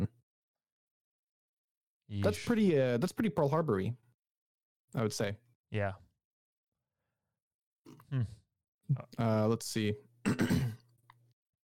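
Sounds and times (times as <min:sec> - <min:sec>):
speech: 0:02.1 - 0:04.0, 0:04.9 - 0:06.0, 0:07.9 - 0:10.7
man clearing his throat: 0:10.3 - 0:10.9.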